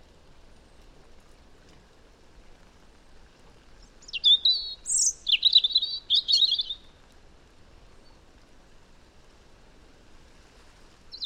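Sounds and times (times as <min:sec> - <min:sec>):
European robin Erithacus rubecula singing: 0:03.8 - 0:06.9.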